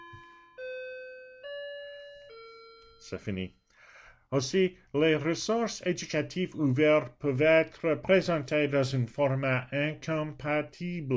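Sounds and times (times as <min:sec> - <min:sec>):
bell chiming three clear tones: 0:00.0 - 0:03.4
speech: 0:03.0 - 0:03.6, 0:04.3 - 0:11.1.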